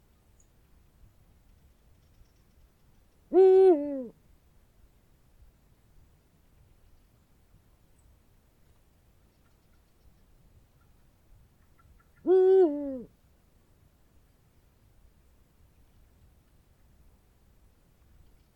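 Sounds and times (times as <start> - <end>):
Eurasian eagle-owl hooting deep two-part calls: 3.3 - 4.1, 11.8 - 13.1.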